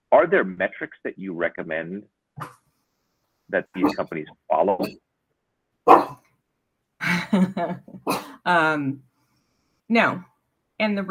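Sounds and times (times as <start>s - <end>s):
speech: 0.2s - 2.6s, 3.5s - 5.1s, 7.1s - 9.1s, 9.9s - 11.0s
dog barking: 5.9s - 6.2s.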